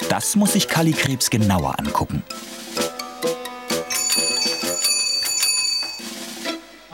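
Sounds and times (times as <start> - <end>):
speech: 0.2 - 3.4
bicycle bell ringing: 3.9 - 6.2.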